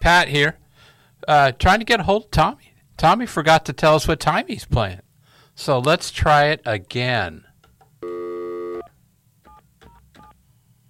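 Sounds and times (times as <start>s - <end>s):
speech: 0.1s - 0.6s, 1.2s - 5.0s, 5.6s - 8.2s
buzzy electronic phone tone: 8.0s - 8.9s
phone dialing beeps: 8.0s - 8.9s.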